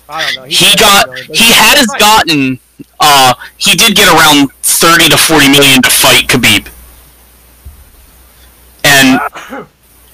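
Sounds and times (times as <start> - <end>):
speech: 0.1 - 6.7, 9.2 - 10.1
loud sharp sneeze trailing into a throaty vocal sound: 9.0 - 9.8.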